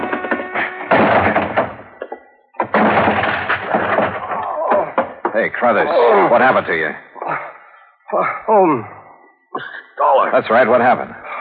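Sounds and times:
locked office door rattling: 0.0 - 2.0, 2.6 - 5.5
locked office door being forced open with banging: 0.0 - 5.6
door wood cracking: 2.6 - 5.5
speech: 5.4 - 7.1, 8.1 - 9.0, 9.6 - 11.2.

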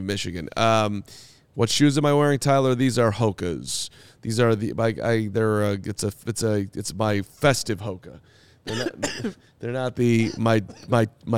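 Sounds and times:
speech: 0.0 - 11.3
person coughing after swallowing a drink the wrong way: 8.7 - 9.4, 10.2 - 11.0.

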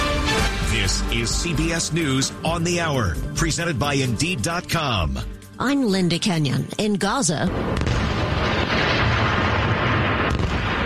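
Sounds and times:
speech: 0.9 - 8.2
explosions and artillery fire from renewed fighting in Gaza: 7.5 - 10.8.

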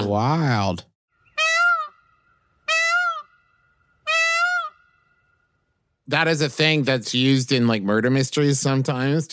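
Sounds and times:
speech: 0.1 - 0.9, 6.1 - 9.3
peacock calling with loud piercing wails: 1.1 - 5.7.

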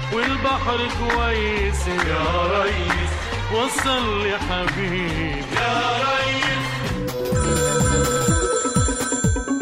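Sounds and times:
speech: 0.1 - 6.5
old-fashioned telephone bell ringing: 7.3 - 9.6.

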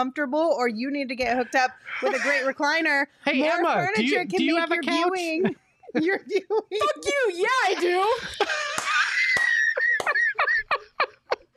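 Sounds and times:
speech: 0.0 - 8.8
laughter: 1.3 - 2.6, 3.4 - 4.5, 5.1 - 11.5
person screaming in a long high-pitched shriek and yelping bursts: 8.2 - 9.7.

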